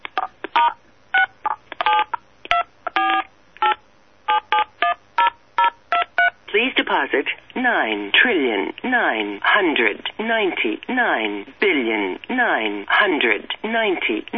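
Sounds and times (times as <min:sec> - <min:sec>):
telephone keypad tones as a number is dialed: 0:00.2 - 0:03.8, 0:04.3 - 0:06.3
speech: 0:07.0 - 0:14.3.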